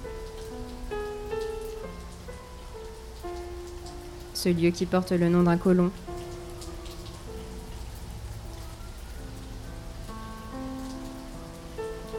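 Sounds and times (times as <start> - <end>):
monsoon rain falling: 0.0 - 12.1
speech: 4.4 - 6.0.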